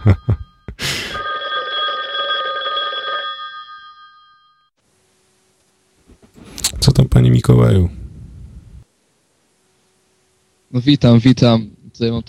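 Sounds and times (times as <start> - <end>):
telephone bell ringing for an incoming call: 0.0 - 4.8
speech: 6.9 - 8.0, 10.8 - 12.2.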